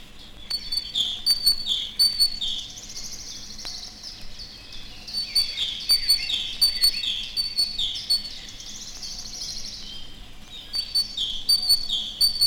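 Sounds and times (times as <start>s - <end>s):
faint background hiss: 0.0s - 12.4s
great tit calling: 0.2s - 12.4s.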